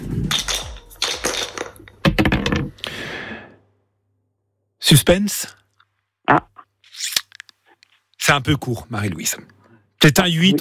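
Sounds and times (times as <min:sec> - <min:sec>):
dice clattering and tumbling across a hard surface: 0:00.2 - 0:02.7
speech: 0:04.9 - 0:05.6, 0:06.3 - 0:06.5, 0:08.3 - 0:10.5.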